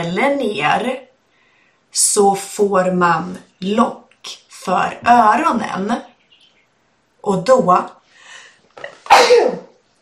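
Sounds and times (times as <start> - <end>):
speech: 0.0 - 1.1, 1.9 - 6.1, 7.2 - 8.0, 8.8 - 9.6
person sneezing: 8.8 - 9.8.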